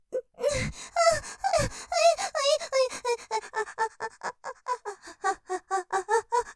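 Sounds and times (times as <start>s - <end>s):
shallow rhythmic panting: 0.4s - 6.5s.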